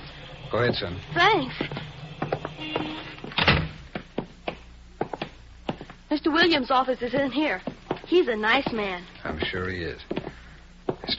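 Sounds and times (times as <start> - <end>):
speech: 0.5 - 2.0, 2.6 - 3.2, 6.1 - 10.2
settlement house building door opening and closing with a rattling thump: 2.2 - 3.9.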